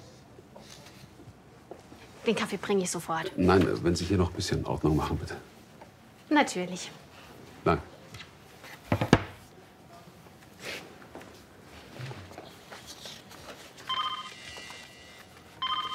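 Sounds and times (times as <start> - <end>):
speech: 2.3 - 5.5, 6.3 - 7.0, 7.6 - 7.9
mobile phone ringing with a bright electronic tone: 13.9 - 15.9.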